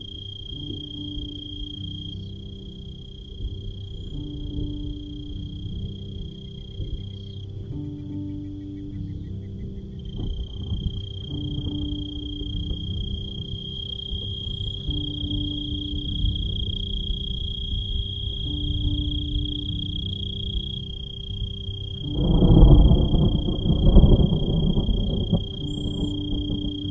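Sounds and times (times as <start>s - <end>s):
high cricket trill from the grass: 0.0s - 26.8s
low rumbling hum: 0.0s - 26.8s.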